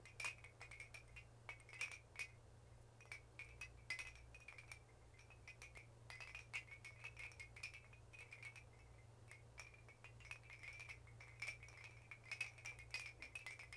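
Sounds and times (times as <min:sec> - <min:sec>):
wind chimes loop: 0:00.0 - 0:02.4, 0:03.0 - 0:13.7.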